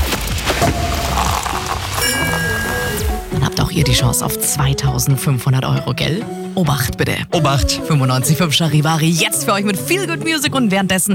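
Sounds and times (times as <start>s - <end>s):
sparkling wine fizzing with bubbling hiss: 0.0s - 3.4s
cork of a bottle of German sparkling wine popping: 0.6s - 3.4s
faint tonal chime: 0.6s - 4.1s
speech: 3.8s - 11.1s.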